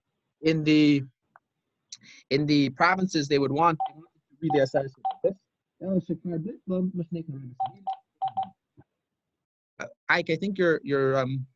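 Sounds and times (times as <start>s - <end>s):
speech: 0.4s - 1.1s, 1.9s - 7.7s, 9.8s - 11.5s
telephone keypad tones while dialing into a call: 7.6s - 8.5s.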